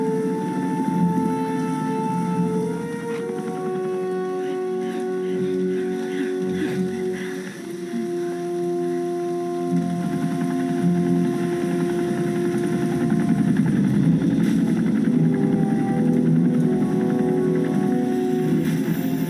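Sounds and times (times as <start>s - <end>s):
helicopter rotor and engine on an island: 0.0s - 19.2s.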